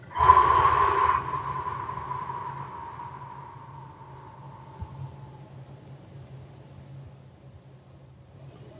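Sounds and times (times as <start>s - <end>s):
deep forceful breath during a stress-relief breathing exercise: 0.0s - 5.5s.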